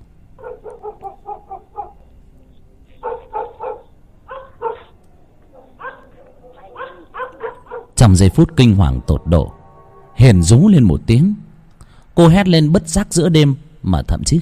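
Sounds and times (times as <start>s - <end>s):
dog barking wildly and straining at its chain: 0.4s - 2.0s, 3.0s - 4.9s, 5.6s - 8.0s
speech: 8.0s - 9.6s, 10.2s - 11.4s, 12.2s - 14.4s.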